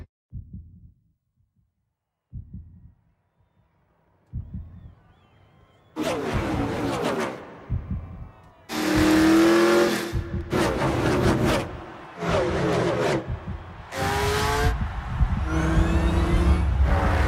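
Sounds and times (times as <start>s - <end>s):
truck engine revving: 6.0s - 8.1s, 8.7s - 17.2s.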